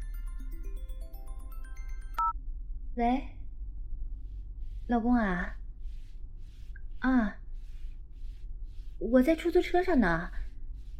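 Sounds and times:
phone ringtone of bright electronic notes: 0.0 - 2.3
speech: 3.0 - 3.4, 4.9 - 5.6, 7.0 - 7.4, 9.0 - 10.4.

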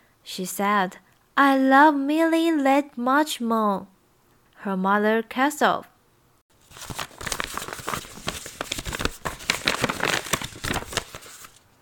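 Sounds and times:
speech: 0.3 - 3.9, 4.6 - 5.9
paper wrapping crinkling as wrapped parcels are opened: 6.6 - 11.7.

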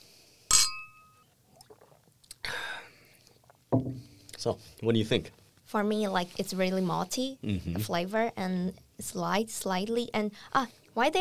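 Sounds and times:
beer glasses clinking in a toast: 0.5 - 1.3
brief sloshing burst: 1.2 - 3.8
dull knock: 3.7 - 4.0
speech: 4.4 - 11.2.

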